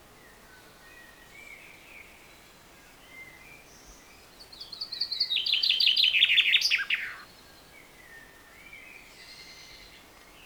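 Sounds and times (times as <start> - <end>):
common chaffinch Fringilla coelebs song: 4.8 - 7.2.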